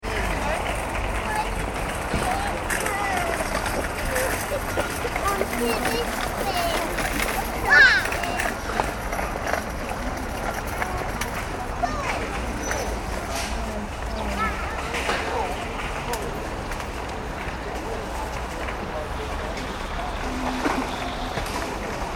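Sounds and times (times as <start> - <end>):
shopping trolleys being pushed in a supermarket car park: 0.0 - 22.1
supermarket external car park ambience: 0.0 - 22.1.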